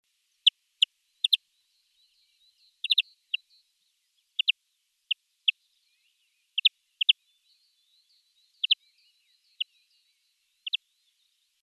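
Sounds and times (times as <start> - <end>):
faint thin twitter: 1.2 - 11.6
European greenfinch Chloris chloris chirping calls: 2.2 - 3.6, 4.4 - 4.6, 8.0 - 10.9.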